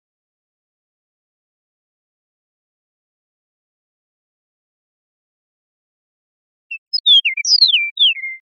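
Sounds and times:
Eastern meadowlark whistled song in Costa Rica: 0:06.7 - 0:08.5.

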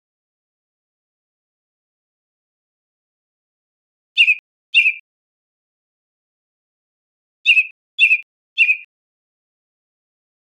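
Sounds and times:
American robin giving short abrupt chirped calls in Costa Rica: 0:04.2 - 0:05.0, 0:07.4 - 0:08.9.

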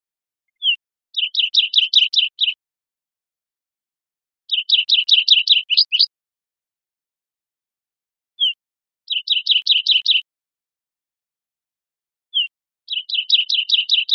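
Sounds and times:
olive warbler calling in Costa Rica: 0:00.6 - 0:02.6, 0:04.5 - 0:06.1, 0:08.4 - 0:10.2, 0:12.3 - 0:14.1.

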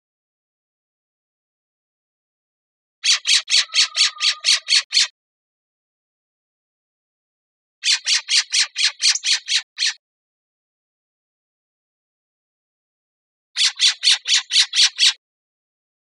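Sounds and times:
Western scrub-jay harsh grating rattling calls: 0:03.0 - 0:05.1, 0:07.8 - 0:10.0, 0:13.6 - 0:15.2.

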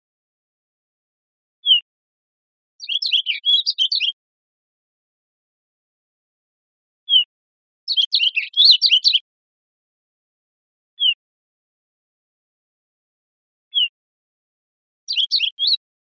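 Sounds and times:
olive warbler twittering phrases of high chirps in Costa Rica: 0:02.8 - 0:04.2, 0:07.9 - 0:09.2, 0:15.1 - 0:15.8.

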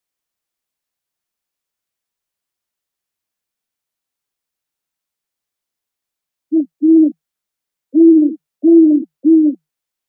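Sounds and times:
great horned owl hooting: 0:06.5 - 0:07.2, 0:08.0 - 0:09.6.

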